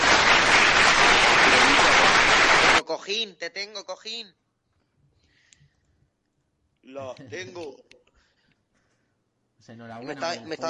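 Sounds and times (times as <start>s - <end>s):
crowd applauding: 0.0s - 2.8s
speech: 3.1s - 4.4s, 6.8s - 7.9s, 9.6s - 10.6s.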